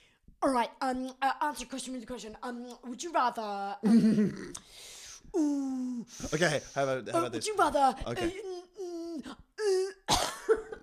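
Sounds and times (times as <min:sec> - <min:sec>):
speech: 0:00.4 - 0:09.8
cough: 0:10.0 - 0:10.8.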